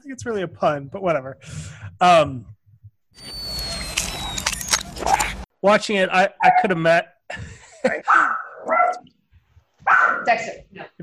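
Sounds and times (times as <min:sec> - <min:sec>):
speech: 0:00.1 - 0:02.6, 0:05.6 - 0:09.1, 0:09.9 - 0:11.0
dog barking outside: 0:08.1 - 0:09.1, 0:09.8 - 0:10.4.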